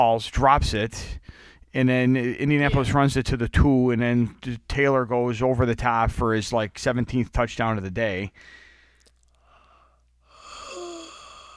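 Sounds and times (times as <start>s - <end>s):
speech: 0.0s - 8.6s
person yawning into the microphone: 10.4s - 11.5s.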